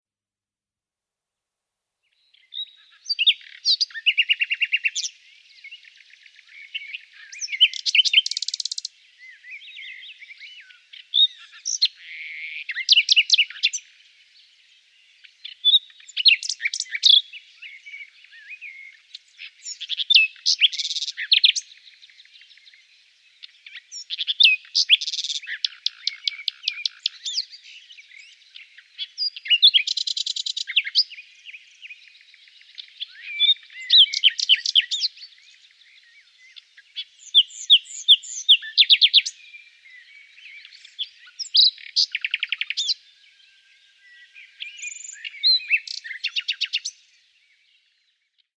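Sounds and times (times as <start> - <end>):
mountain forest ambience: 2.0 - 48.5.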